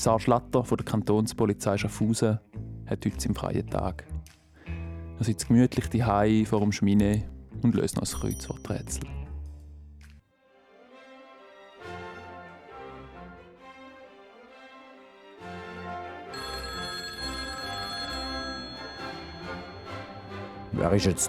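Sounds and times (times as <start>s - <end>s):
speech: 0.0s - 4.1s, 5.2s - 9.2s, 20.8s - 21.2s
telephone ringing at a home: 16.3s - 21.2s.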